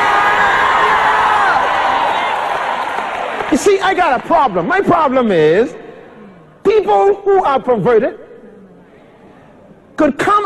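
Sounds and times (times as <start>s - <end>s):
large church audience shouting and cheering: 0.0s - 4.2s
speech: 3.5s - 5.8s, 6.7s - 8.2s, 10.0s - 10.4s.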